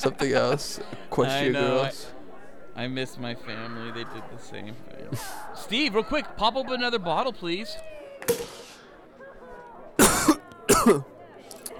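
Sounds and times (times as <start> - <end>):
speech: 0.0 - 2.1, 2.8 - 8.5, 10.8 - 11.1
laughter: 0.0 - 11.7
person coughing during a casual conversation over drinks: 10.0 - 11.1.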